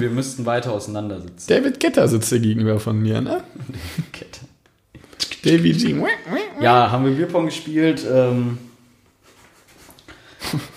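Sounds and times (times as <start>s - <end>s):
speech: 0.0s - 4.4s, 5.4s - 8.7s, 10.5s - 10.7s
quiet hiss: 0.0s - 10.7s
laughter: 5.5s - 7.8s
dog huffing: 5.8s - 7.6s.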